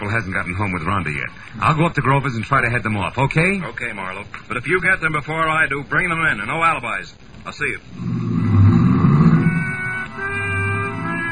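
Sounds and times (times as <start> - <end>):
speech: 0.1 - 8.4
car engine roaring and revving as the car pulls away quickly: 8.0 - 11.3.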